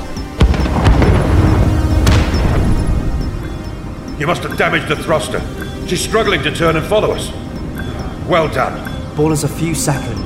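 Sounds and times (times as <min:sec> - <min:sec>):
missile explosion in a space video game: 0:00.4 - 0:03.2
speech: 0:04.3 - 0:07.4, 0:08.3 - 0:10.2.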